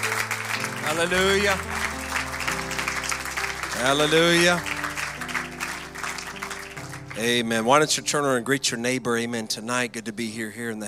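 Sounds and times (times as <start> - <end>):
church audience applause during a service: 0.0 - 7.7
speech: 0.9 - 2.0, 3.8 - 4.7, 7.2 - 10.8.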